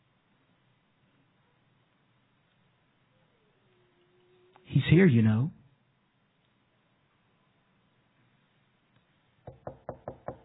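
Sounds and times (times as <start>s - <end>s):
speech: 4.8s - 5.6s
firm knocking on a door: 9.5s - 10.4s.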